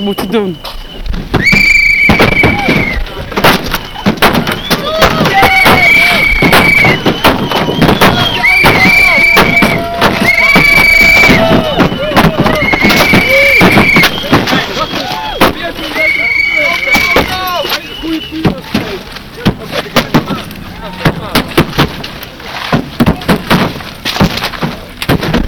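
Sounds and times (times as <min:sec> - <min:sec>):
speech: 0:00.0 - 0:01.6
whistles: 0:00.0 - 0:18.8
noisy crowd on the street: 0:00.0 - 0:25.4
car being smashed on the street: 0:01.2 - 0:25.4
people shouting: 0:01.4 - 0:21.6.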